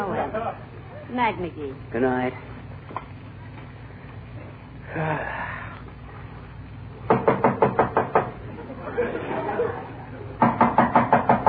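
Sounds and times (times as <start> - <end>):
laughter: 0.0 - 0.7, 8.5 - 10.4
low hum: 0.0 - 11.4
speech: 0.6 - 3.0, 4.9 - 5.5
rapid firm knocking on a door: 7.1 - 8.4, 10.4 - 11.4.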